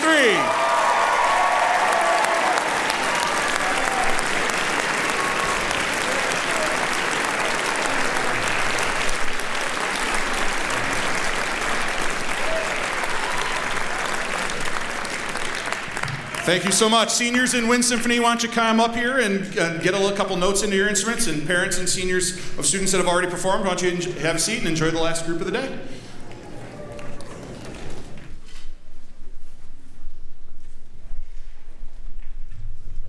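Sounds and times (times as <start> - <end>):
large audience applauding: 0.0 - 18.2, 25.9 - 28.4
speech: 16.5 - 26.0.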